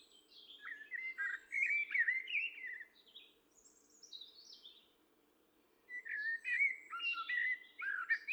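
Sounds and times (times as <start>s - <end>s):
common blackbird Turdus merula singing: 0.4s - 2.8s, 5.9s - 8.3s.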